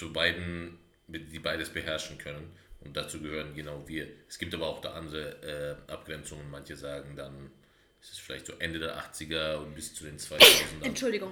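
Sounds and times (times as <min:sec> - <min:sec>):
speech: 0:00.0 - 0:11.3
person sneezing: 0:10.4 - 0:11.0.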